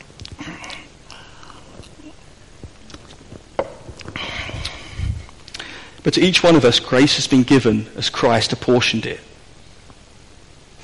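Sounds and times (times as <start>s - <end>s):
small mouth clicks: 0.0s - 2.2s, 3.9s - 5.8s
soft slurping and swallowing: 0.0s - 5.8s
person sipping a drink: 0.0s - 6.0s
speech: 6.0s - 9.3s.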